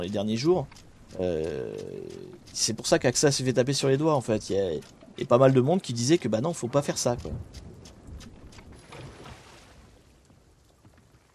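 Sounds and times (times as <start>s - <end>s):
speech: 0.0s - 7.7s
water splashing from a boat moving through water: 0.0s - 10.3s.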